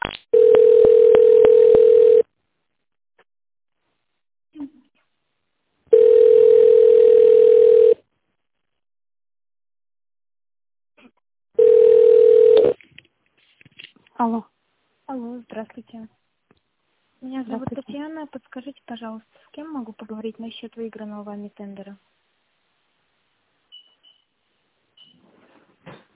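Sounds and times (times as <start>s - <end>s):
telephone ringback tone while a call is transferred: 0.4s - 2.3s, 5.9s - 8.0s, 11.6s - 12.8s
speech: 18.2s - 22.2s.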